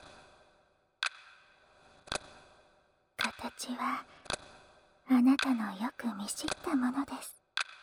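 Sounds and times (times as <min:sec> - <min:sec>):
speech: 0:03.6 - 0:04.2, 0:05.1 - 0:07.4
analog clock with rotating hands ticking: 0:05.2 - 0:06.9.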